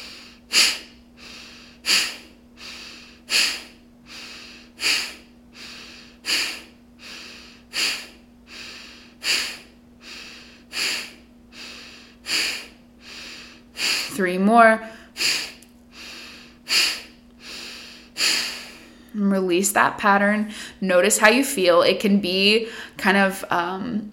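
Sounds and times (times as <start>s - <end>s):
sharp forceful nasal exhales in a breath of fire breathing exercise: 0.0s - 14.2s, 14.9s - 19.0s
speech: 14.2s - 15.0s, 19.3s - 24.1s.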